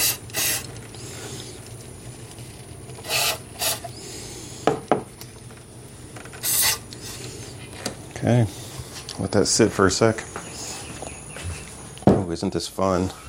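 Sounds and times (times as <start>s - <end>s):
aerosol cleaner sprayed into throttle body: 0.0s - 1.3s, 3.0s - 3.9s, 6.4s - 7.3s
speech: 8.2s - 8.6s, 9.2s - 10.4s, 12.4s - 13.2s.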